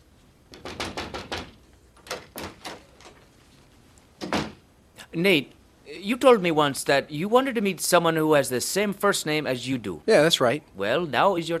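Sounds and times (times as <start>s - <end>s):
knocking on a door: 0.5s - 1.6s
speech: 5.1s - 11.5s.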